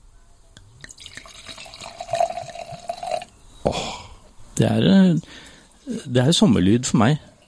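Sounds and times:
drink pouring into a glass outdoors in summer: 0.8s - 3.3s
speech: 3.6s - 4.0s, 4.6s - 7.3s.

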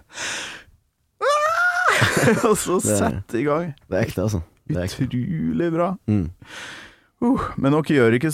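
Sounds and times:
laughter: 1.8s - 3.0s
speech: 2.2s - 8.3s
singer's breathy intake of air before singing: 6.4s - 7.1s.

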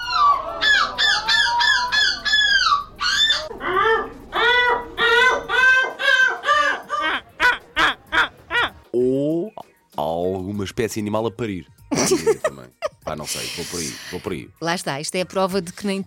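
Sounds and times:
person imitating seagull calls at a seagull-imitation championship: 0.1s - 9.6s
speech: 10.7s - 16.0s.

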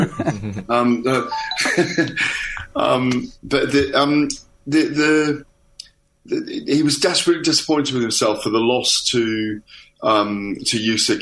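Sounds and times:
laughter: 0.0s - 4.1s
speech: 0.0s - 5.5s, 6.3s - 11.1s
electronic alarm chiming doorbell-like tones: 1.2s - 2.0s.

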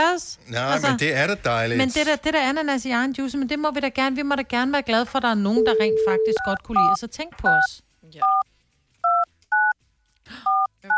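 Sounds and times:
speech: 0.0s - 8.5s
telephone keypad dialing dual-tone beeps: 5.6s - 8.4s, 10.5s - 10.9s.

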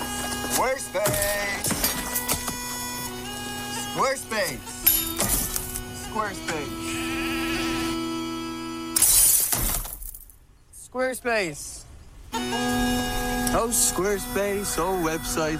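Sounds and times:
droning sustained tones: 0.0s - 9.1s, 12.3s - 15.5s
speech: 0.6s - 1.7s, 11.0s - 11.8s, 12.5s - 15.5s
glass window smashing: 4.9s - 5.8s, 9.0s - 10.3s.

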